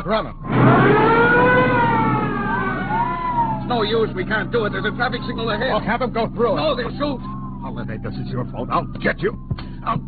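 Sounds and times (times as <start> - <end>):
speech: 0.0 - 1.2, 3.7 - 10.0
low vehicle rumble: 0.4 - 10.0
police car sirens wailing during a chase: 0.4 - 10.0.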